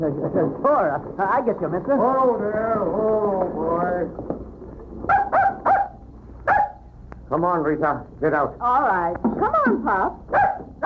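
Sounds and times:
speech: 0:00.0 - 0:04.5, 0:07.3 - 0:10.8
dog barking: 0:05.1 - 0:06.9, 0:10.3 - 0:10.8.

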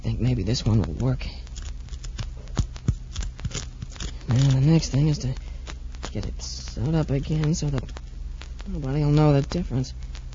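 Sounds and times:
low steady hum: 0:00.0 - 0:10.3
speech: 0:00.2 - 0:01.4, 0:04.3 - 0:05.4, 0:06.1 - 0:08.0, 0:08.7 - 0:10.1
cork and rubber being cut away: 0:00.6 - 0:08.0.

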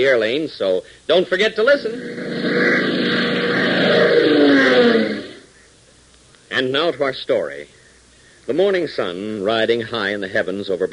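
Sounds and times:
speech: 0:00.0 - 0:02.7, 0:06.6 - 0:07.8, 0:08.5 - 0:10.9
new radically designed jet plane roaring through the sky at high altitude: 0:01.8 - 0:05.5.

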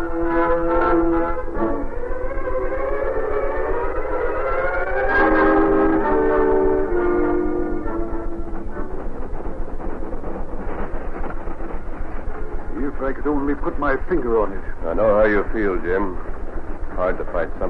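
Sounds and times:
loud wavering train horn blasts: 0:00.0 - 0:02.1, 0:04.7 - 0:09.4
train of engine and caboose rumbling on new rails: 0:00.0 - 0:17.6
speech: 0:13.8 - 0:16.3, 0:17.0 - 0:17.6.

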